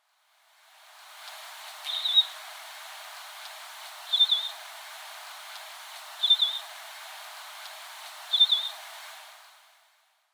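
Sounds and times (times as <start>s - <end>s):
Pine Grosbeak calling in Sapporo: 1.8s - 2.4s, 4.1s - 4.6s, 6.2s - 6.7s, 8.3s - 8.8s.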